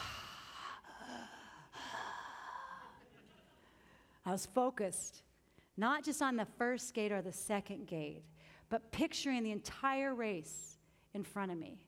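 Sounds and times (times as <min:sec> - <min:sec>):
voice imitating heavy breathing inside a full face helmet: 0:00.0 - 0:03.0
speech: 0:04.2 - 0:11.8.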